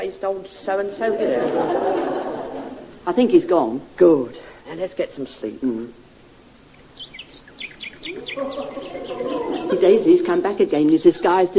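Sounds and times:
speech: 0.2 - 6.0, 8.0 - 11.5
laughter: 1.0 - 3.0, 8.1 - 10.4
nightingale singing: 6.4 - 11.5.

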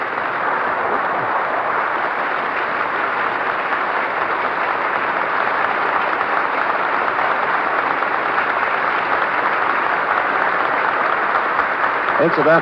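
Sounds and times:
applause from a large crowd in a big hall: 0.0 - 12.6
speech: 12.2 - 12.6.

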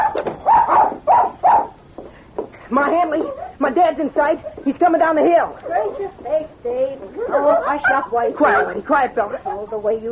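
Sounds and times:
small dog barking excitedly: 0.0 - 1.8, 7.2 - 8.8
speech: 2.8 - 10.0.

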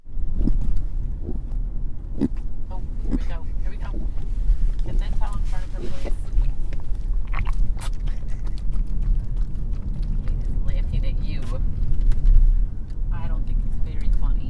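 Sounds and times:
constant low car engine and road rumble: 0.0 - 14.4
puppy retching and heaving from car sickness: 7.2 - 10.3.

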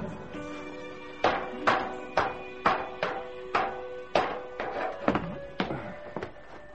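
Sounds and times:
hand pump clunking and squeaking while pumping water from boat bilges: 1.3 - 5.6.

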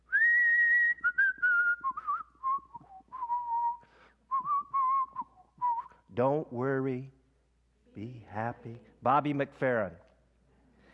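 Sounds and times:
person whistling a bright bouncy tune: 0.0 - 6.1
speech: 6.2 - 7.2, 8.0 - 10.0.

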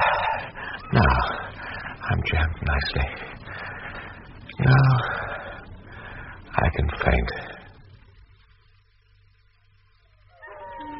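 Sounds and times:
rumbling hissing background: 0.0 - 10.9
speech: 0.9 - 1.4, 2.1 - 3.4, 6.6 - 7.5
tracking dogs howling: 10.3 - 10.9.

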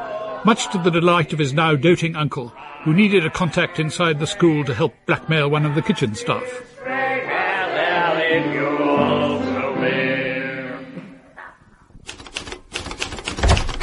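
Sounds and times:
speech: 0.4 - 6.7, 8.3 - 10.0
sustained tonal music-like passage: 6.8 - 11.3
typewriter keystrokes typing a letter: 12.0 - 13.8.

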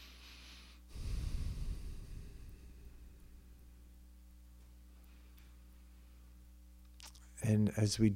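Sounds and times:
nasal inhale during alternate nostril breathing practice: 0.0 - 3.5
speech: 7.5 - 8.1.

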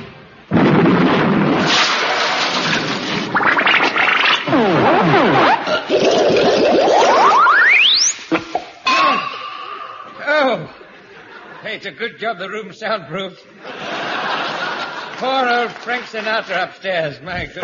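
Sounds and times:
loud comedy explosion sound effect: 0.5 - 10.0
rising whistle: 6.8 - 8.2
audience laughter: 10.1 - 11.8, 13.5 - 16.6
speech: 11.8 - 13.8, 15.2 - 17.6.

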